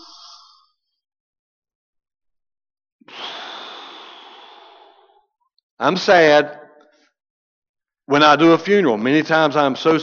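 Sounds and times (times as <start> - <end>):
deep breathing to calm down: 3.0 - 5.4
speech: 5.8 - 6.6, 8.1 - 10.0.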